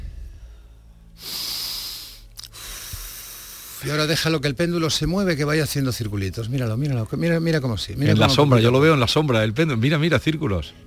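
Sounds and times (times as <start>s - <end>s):
deep breath in: 0.4s - 3.8s
long breathy exhale: 1.2s - 3.8s
speech: 3.8s - 10.8s.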